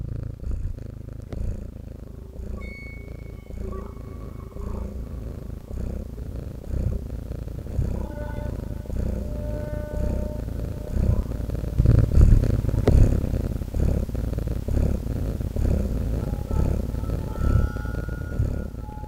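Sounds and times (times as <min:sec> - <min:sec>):
cat purring: 0:00.0 - 0:19.0
faint higher tones: 0:02.0 - 0:12.9, 0:15.8 - 0:19.0.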